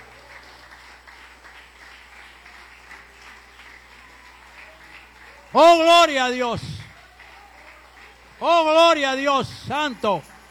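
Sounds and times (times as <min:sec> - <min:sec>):
audience applauding: 0:00.0 - 0:10.5
speech: 0:05.5 - 0:06.7, 0:08.4 - 0:10.3.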